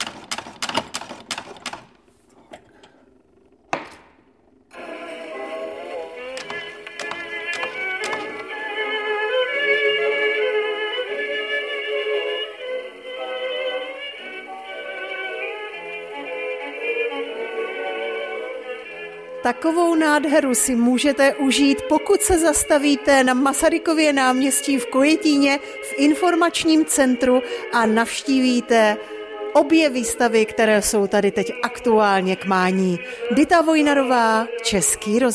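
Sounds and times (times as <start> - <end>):
gramophone from the early 1920s playing a shellac record: 4.4 - 35.3
gramophone hand crank being wound, clicking and ratcheting: 6.4 - 8.6
speech: 19.5 - 35.3.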